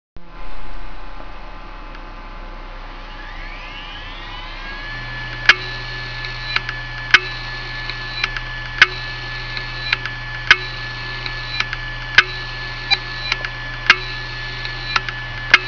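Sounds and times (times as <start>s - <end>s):
IBM Deskstar hard disk drive click of death: 3.1s - 15.6s.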